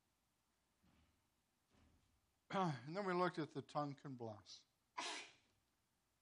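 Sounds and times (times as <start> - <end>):
speech: 2.5 - 4.7
person sneezing: 5.0 - 5.5.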